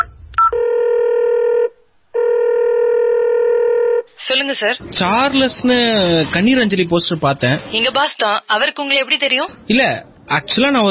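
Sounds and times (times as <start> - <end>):
electronic telephone ring tone: 0.0 - 4.1
speech: 4.4 - 10.8.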